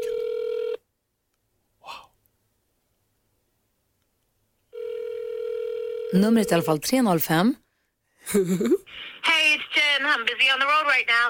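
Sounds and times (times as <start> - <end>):
telephone ringback tone: 0.0 - 0.8, 4.7 - 6.7
speech: 6.1 - 7.6, 8.2 - 11.2.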